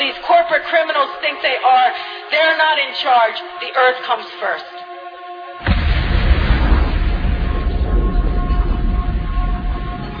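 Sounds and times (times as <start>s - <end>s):
speech: 0.5s - 4.8s
car bomb explosion: 5.6s - 10.1s
heavy sustained rumbling roar after a car bomb explosion: 5.6s - 10.1s.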